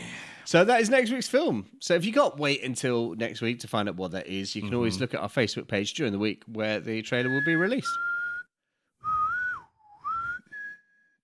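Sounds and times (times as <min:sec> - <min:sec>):
speech: 0:00.5 - 0:08.1
person whistling a short tune: 0:07.3 - 0:11.2.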